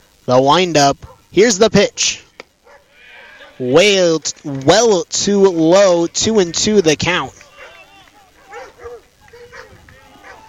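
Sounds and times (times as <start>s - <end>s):
speech: 0.3s - 2.2s, 3.6s - 7.4s
dogs barking excitedly: 1.0s - 1.4s, 2.6s - 3.7s, 7.4s - 10.4s.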